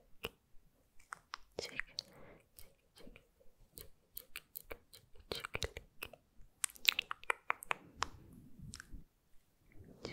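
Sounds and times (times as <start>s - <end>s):
wet mouth clicks, smacks and tongue ticks: 1.0s - 9.0s.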